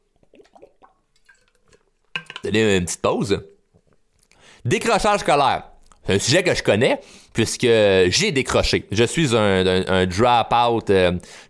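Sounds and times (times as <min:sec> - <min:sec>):
person taking a sip of water: 0:00.0 - 0:02.5
glass being set down: 0:02.1 - 0:02.5
speech: 0:02.4 - 0:03.5, 0:04.6 - 0:11.4.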